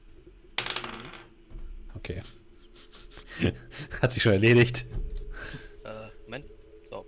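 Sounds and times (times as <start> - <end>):
dice clattering and tumbling on a hard table: 0.6 - 1.4
speech: 2.0 - 4.9
laughter: 2.2 - 4.2.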